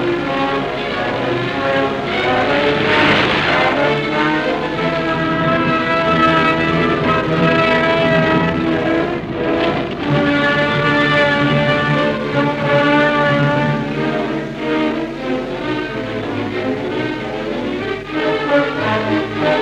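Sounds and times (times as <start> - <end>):
Stuka dive bomber engines droning during the German airborne landing on Crete: 0.0 - 19.5.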